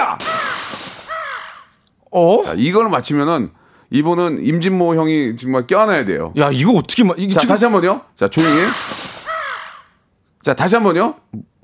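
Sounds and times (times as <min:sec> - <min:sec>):
bright sweeping bird calls: 0:00.3 - 0:01.7, 0:08.4 - 0:10.0
speech: 0:02.1 - 0:09.1, 0:10.4 - 0:11.5.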